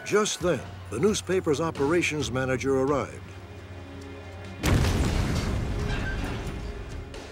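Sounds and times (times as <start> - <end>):
speech: 0.1 - 3.4
pipe bomb explosion at a newspaper office: 4.6 - 6.8.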